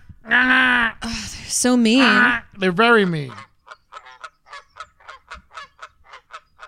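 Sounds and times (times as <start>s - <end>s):
speech: 1.5s - 3.5s
goose honking: 1.9s - 6.6s.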